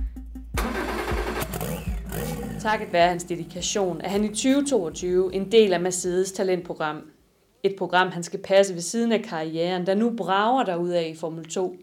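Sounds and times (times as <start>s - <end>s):
race car engine cranking and starting: 0.6s - 6.2s
speech: 2.6s - 11.8s.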